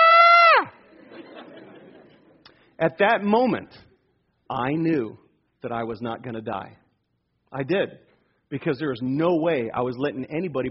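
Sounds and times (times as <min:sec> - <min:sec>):
man's attempted high-pitched scream: 0:00.0 - 0:00.8
laughter: 0:00.8 - 0:02.4
speech: 0:02.8 - 0:03.8, 0:04.5 - 0:06.8, 0:07.5 - 0:10.6.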